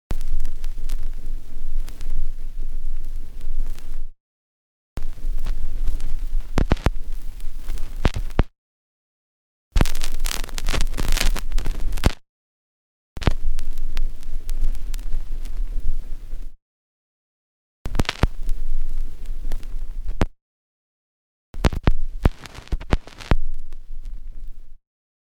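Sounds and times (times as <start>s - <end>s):
vinyl stylus needle set down on a record: 0.1s - 4.1s, 5.0s - 8.5s, 9.8s - 12.2s, 13.2s - 16.6s, 17.9s - 20.4s, 21.6s - 24.8s.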